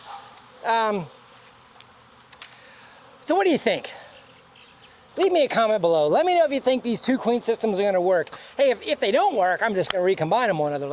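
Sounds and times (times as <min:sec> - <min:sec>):
honeybee buzzing past: 0:00.0 - 0:09.7
speech: 0:00.6 - 0:01.2, 0:03.3 - 0:04.0, 0:05.2 - 0:10.9.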